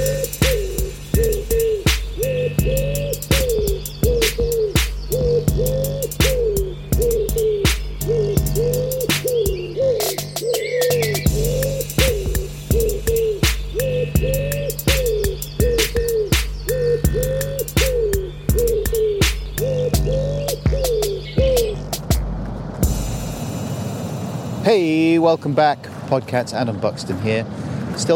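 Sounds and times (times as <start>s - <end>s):
wood pigeon cooing in a jingle: 0.0s - 22.0s
steady thumping beat: 0.0s - 25.2s
speech: 25.2s - 28.1s.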